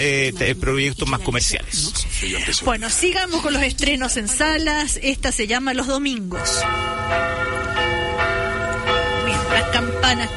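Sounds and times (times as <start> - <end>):
speech: 0.0 - 7.9, 9.7 - 10.3
church bells ringing calling to mass: 6.3 - 10.3.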